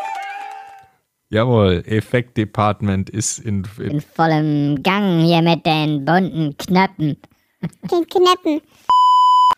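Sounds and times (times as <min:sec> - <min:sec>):
faint low noise: 0:01.0 - 0:09.5
speech: 0:01.3 - 0:09.0
censor bleep, a pure high tone: 0:08.9 - 0:09.5.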